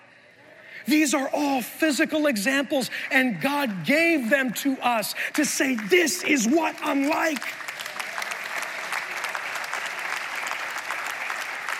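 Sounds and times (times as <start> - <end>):
speech: 0.8 - 7.6
audience applauding: 5.2 - 11.7.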